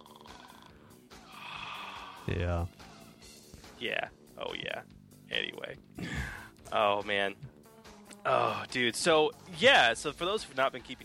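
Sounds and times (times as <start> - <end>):
voice imitating snoring with a throaty nasal rattle: 0.0 - 2.3
speech: 2.3 - 2.8, 3.8 - 7.5, 8.2 - 11.0.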